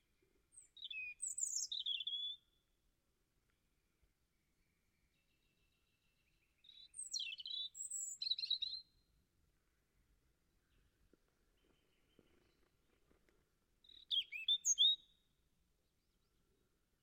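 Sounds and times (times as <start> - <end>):
European robin singing: 0.0 - 2.6, 4.3 - 9.1, 10.6 - 13.0, 13.8 - 17.0.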